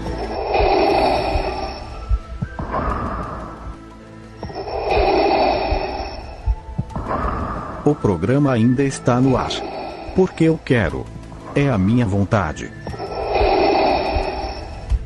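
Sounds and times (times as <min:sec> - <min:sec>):
heavy rasping breathing of a villain: 0:00.1 - 0:07.9, 0:09.3 - 0:11.3, 0:12.9 - 0:14.9
speech: 0:08.1 - 0:12.8.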